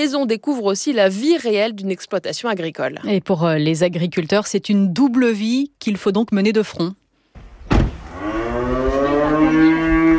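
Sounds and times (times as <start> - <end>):
speech: 0.0 - 7.0
cow on a farm mooing: 8.1 - 10.1.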